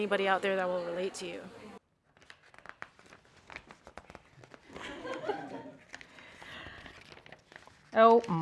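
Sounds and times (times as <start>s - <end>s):
speech: 0.0s - 1.6s, 7.9s - 8.4s
paper crinkling and crackling: 2.1s - 4.8s, 5.8s - 8.4s
laughter: 4.7s - 5.9s.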